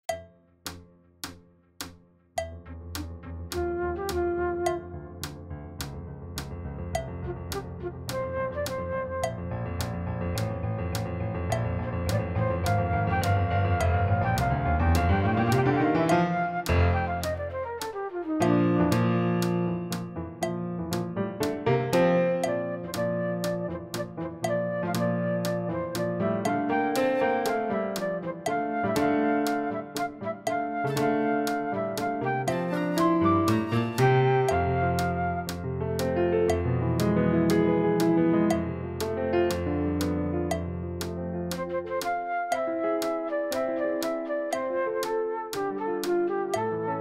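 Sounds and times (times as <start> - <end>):
fast piano backing track: 2.4 - 47.0
fast flute backing track: 3.5 - 5.4, 7.0 - 10.0, 12.1 - 20.1, 22.3 - 36.6, 41.5 - 47.0.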